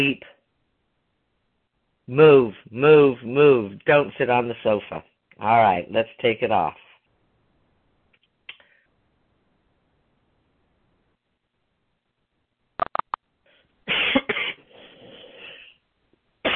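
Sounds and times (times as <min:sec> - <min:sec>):
speech: 0:00.0 - 0:00.4, 0:02.1 - 0:06.8
person coughing: 0:13.9 - 0:14.7
throat clearing: 0:13.9 - 0:14.7.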